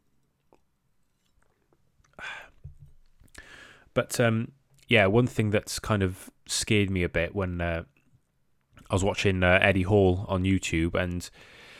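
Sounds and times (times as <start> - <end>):
person sipping water: 0.4 - 2.6
speech: 4.0 - 8.0, 8.9 - 11.6.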